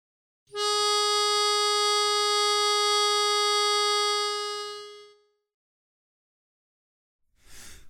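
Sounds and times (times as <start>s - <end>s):
baritone saxophone: 0.5s - 5.2s.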